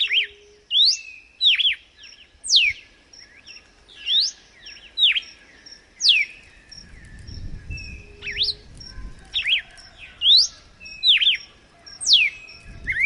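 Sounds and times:
red-cowled cardinal whistled song: 0.0 - 5.4, 6.0 - 13.0.

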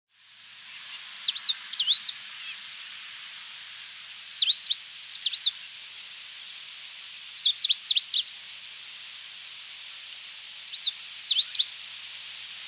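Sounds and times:
background hiss: 0.1 - 12.6
Coal-crested finch (Charitospiza eucosma) giving sharp high sweeping chirps: 1.1 - 2.6, 4.3 - 5.5, 7.3 - 8.3, 10.5 - 11.8.

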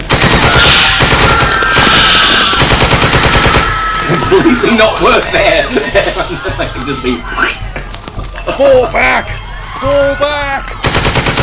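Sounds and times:
machine-gun fire during an attack: 0.0 - 3.8, 10.8 - 11.4
laughter: 4.0 - 9.6
speech: 4.4 - 7.6, 8.5 - 10.8.

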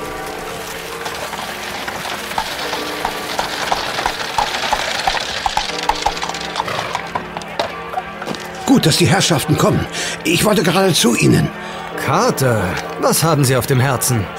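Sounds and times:
hooves of a horse drawing a carriage clip-clopping: 0.0 - 8.7
speech: 8.7 - 14.3.

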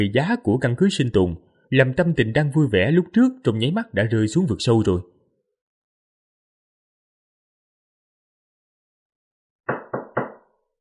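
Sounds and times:
speech: 0.0 - 5.2
knocking on a door: 9.7 - 10.5.

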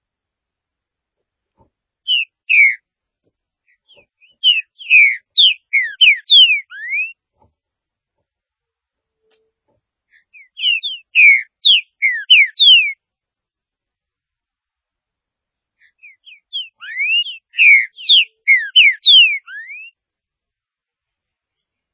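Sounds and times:
Green-winged saltator song of sweet slurred whistles: 2.1 - 2.8, 3.9 - 7.2, 10.3 - 13.0, 16.0 - 20.0.

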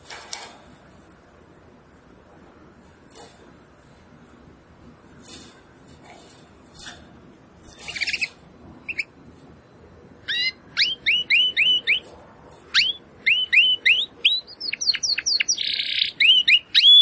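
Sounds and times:
domestic canary singing: 7.6 - 9.2, 10.2 - 17.0.

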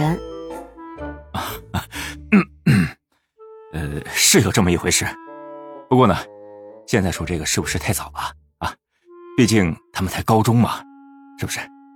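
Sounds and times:
speech: 0.0 - 0.3, 4.3 - 5.3, 5.9 - 8.8, 9.4 - 11.7
man's dry cough during a tense conversation: 1.4 - 3.0.

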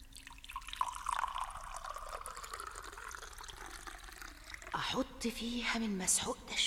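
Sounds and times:
water pouring into a bowl with a faint steady trickle: 0.0 - 5.3
speech: 4.8 - 6.6.

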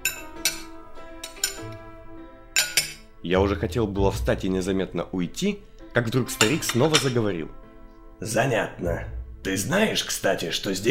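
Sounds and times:
wine glasses clinking together in a toast: 0.0 - 1.8, 2.5 - 3.1, 6.2 - 7.3
speech: 3.2 - 7.6, 8.2 - 10.9.

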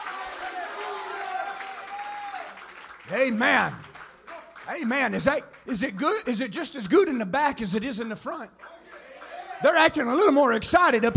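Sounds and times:
church congregation clapping hands in praise: 0.0 - 7.0, 8.5 - 10.3
speech: 3.1 - 3.9, 4.7 - 8.7, 9.6 - 11.1.

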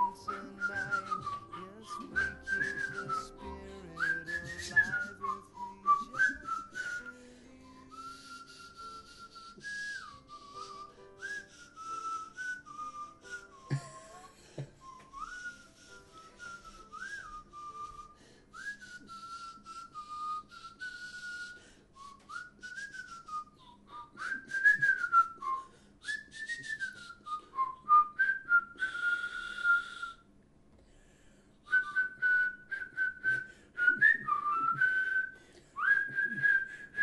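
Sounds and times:
person whistling a melody: 0.0 - 30.3, 31.6 - 37.0.

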